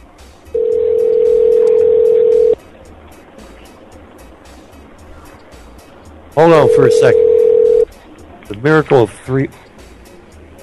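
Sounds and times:
telephone dial tone: 0.6s - 2.6s, 6.6s - 7.9s
speech: 6.4s - 7.2s, 8.5s - 9.6s.

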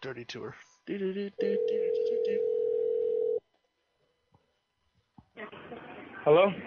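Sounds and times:
speech: 0.0s - 2.6s, 5.4s - 6.6s
telephone ring tone on a call back: 1.4s - 3.4s.

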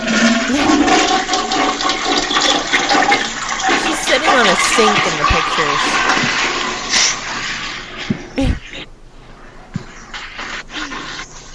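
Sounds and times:
toilet flushing: 0.0s - 8.1s.

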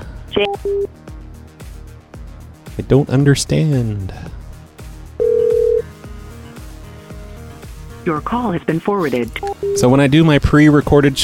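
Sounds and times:
ringback tone from an outgoing phone call: 0.4s - 0.9s, 5.2s - 5.9s, 9.4s - 9.9s
speech: 0.4s - 1.1s, 2.8s - 4.4s, 8.0s - 11.2s.

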